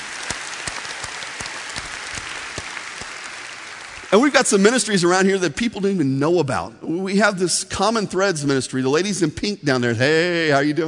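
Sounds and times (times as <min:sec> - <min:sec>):
crowd applauding: 0:00.0 - 0:05.4
speech: 0:04.1 - 0:10.8.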